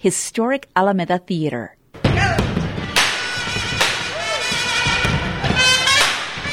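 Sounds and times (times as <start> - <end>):
speech: 0.0 - 2.5
hammers striking at a groundbreaking ceremony: 2.0 - 6.5
crowd murmuring: 2.8 - 6.5.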